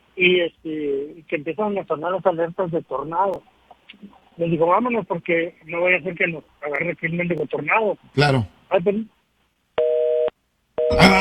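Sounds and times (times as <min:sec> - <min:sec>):
speech: 0:00.2 - 0:09.2, 0:10.9 - 0:11.1
telephone busy signal after a call is cut off: 0:09.8 - 0:11.1.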